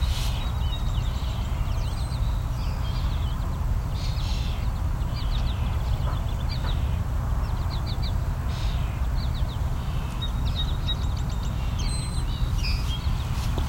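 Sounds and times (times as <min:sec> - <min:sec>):
busy chorus of birds singing and chattering: 0:00.0 - 0:13.6.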